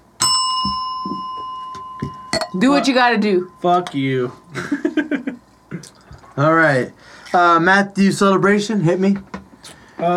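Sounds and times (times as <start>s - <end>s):
bell struck and ringing: 0.2s - 4.8s
speech: 2.6s - 4.8s, 6.4s - 9.3s, 10.0s - 10.1s.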